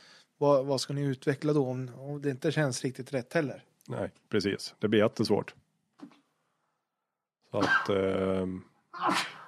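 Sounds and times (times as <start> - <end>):
speech: 0.4 - 6.1, 7.5 - 9.4
sneeze: 7.6 - 8.1, 9.0 - 9.4.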